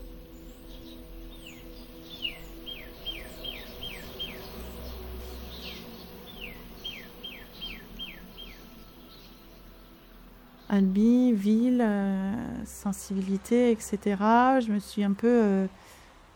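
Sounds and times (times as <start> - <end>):
steady high insect-like hiss: 0.0 - 10.7
birds singing in descending whistled notes: 0.0 - 13.4
low hum: 0.0 - 16.3
speech: 10.8 - 15.8.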